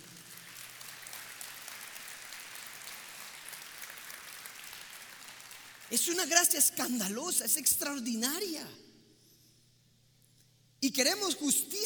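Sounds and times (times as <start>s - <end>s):
audience applause in a large room: 0.0s - 5.9s
speech: 5.9s - 8.8s, 10.9s - 11.8s.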